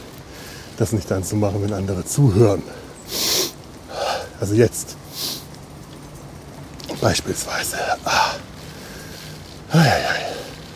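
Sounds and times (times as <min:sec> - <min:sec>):
steady hiss: 0:00.0 - 0:10.7
speech: 0:00.8 - 0:03.3, 0:04.4 - 0:05.3, 0:07.0 - 0:08.6, 0:09.7 - 0:10.3
person breathing heavily with a snorting breath: 0:08.1 - 0:10.7.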